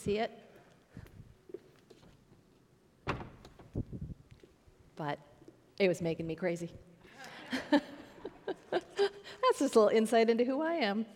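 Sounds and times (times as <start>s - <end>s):
speech: 0.0s - 0.5s, 5.0s - 6.9s, 7.7s - 7.9s, 9.5s - 11.1s
door swinging shut: 3.0s - 3.8s.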